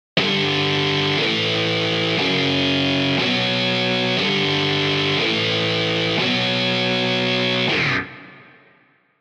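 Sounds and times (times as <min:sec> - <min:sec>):
electric guitar through a guitar rig: 0:00.2 - 0:08.8.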